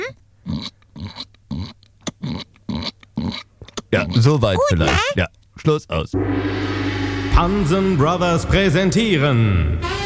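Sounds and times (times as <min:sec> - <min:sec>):
person imitating a piglet's oink: 0:00.0 - 0:05.3
speech: 0:03.9 - 0:06.8, 0:07.4 - 0:09.9.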